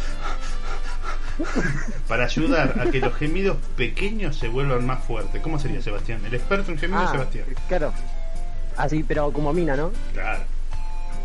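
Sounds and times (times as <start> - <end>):
person panting with short rapid breaths: 0.0 - 1.6
laughter: 1.4 - 3.6
speech: 1.4 - 8.1, 8.8 - 10.5.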